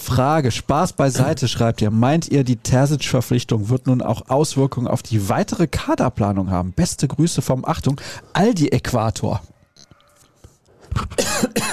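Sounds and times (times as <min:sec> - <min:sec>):
speech: 0:00.1 - 0:09.5, 0:11.0 - 0:11.5
person coughing: 0:11.0 - 0:11.7.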